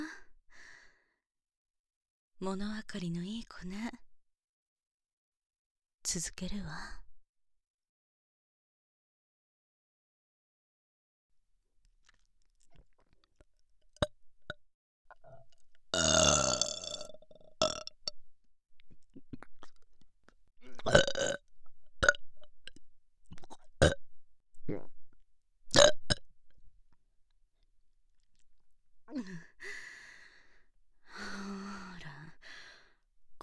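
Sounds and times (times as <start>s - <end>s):
breathy sounds: 0.1s - 1.2s, 29.4s - 33.0s
speech: 2.4s - 4.1s, 6.0s - 7.0s
loud drawn-out burping: 16.0s - 18.0s, 20.7s - 21.4s, 25.7s - 26.2s.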